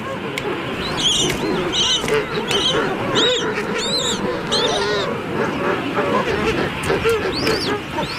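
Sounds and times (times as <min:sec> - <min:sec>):
crowded penguin colony honking and warbling: 0:00.0 - 0:08.1
king penguin chick calling with whistling trills: 0:00.4 - 0:05.2, 0:06.8 - 0:08.1.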